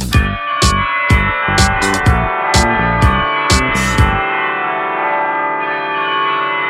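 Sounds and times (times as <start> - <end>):
church bells ringing: 0.2 - 6.6.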